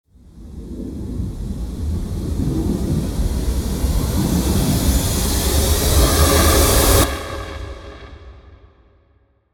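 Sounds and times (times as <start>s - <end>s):
cinematic riser: 0.6s - 7.9s.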